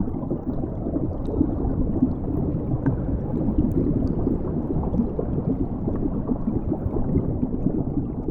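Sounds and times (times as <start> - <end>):
underwater ambience: 0.0 - 8.2.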